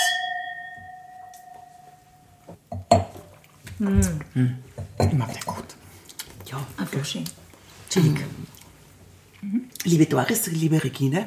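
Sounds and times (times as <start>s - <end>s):
wine glasses clinking in a toast: 0.0s - 3.2s
speech: 3.8s - 5.8s, 6.5s - 8.5s, 9.8s - 11.2s.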